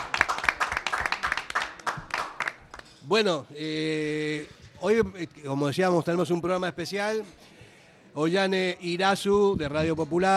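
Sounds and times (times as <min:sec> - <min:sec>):
hands clapping: 0:00.0 - 0:03.0
speech: 0:03.1 - 0:07.5, 0:08.2 - 0:10.3.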